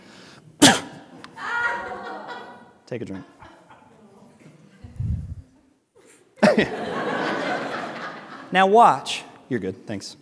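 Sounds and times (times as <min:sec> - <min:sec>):
person sneezing into a bottle of water: 0:00.6 - 0:01.1
laughter: 0:01.4 - 0:04.2, 0:06.4 - 0:08.6
speech: 0:02.9 - 0:03.4, 0:06.6 - 0:07.0, 0:08.5 - 0:10.2.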